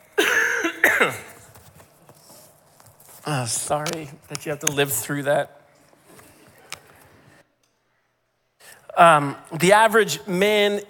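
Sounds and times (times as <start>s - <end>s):
person coughing: 0.1s - 1.4s
speech: 3.3s - 5.6s, 9.0s - 10.8s.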